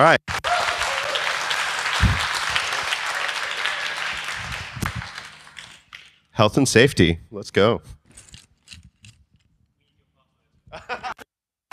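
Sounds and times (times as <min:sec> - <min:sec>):
speech: 0:00.0 - 0:00.4, 0:06.4 - 0:08.0
crowd cheering: 0:00.0 - 0:05.9
audience applause: 0:00.0 - 0:06.0
laughter: 0:10.7 - 0:11.3.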